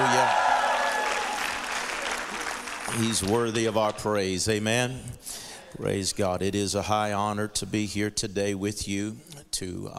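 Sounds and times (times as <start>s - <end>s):
large church audience clapping and cheering during a service: 0.0s - 4.0s
speech: 2.9s - 9.9s.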